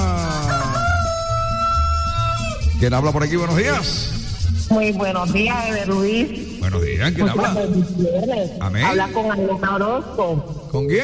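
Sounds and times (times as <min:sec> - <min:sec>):
rooster crowing: 0:00.1 - 0:02.7
speech: 0:02.8 - 0:11.0.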